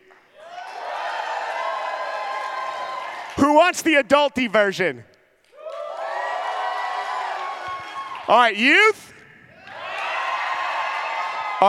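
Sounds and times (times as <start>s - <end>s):
audience cheering and shouting: 0.4s - 3.6s, 5.6s - 9.0s, 9.6s - 11.6s
speech: 3.4s - 5.1s, 8.3s - 9.2s.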